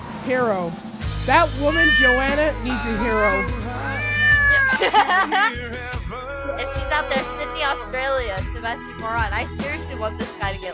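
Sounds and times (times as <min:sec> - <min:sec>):
speech: 0:00.2 - 0:03.7, 0:04.8 - 0:10.7
domestic cat meowing: 0:01.7 - 0:04.9
laughter: 0:04.3 - 0:06.0.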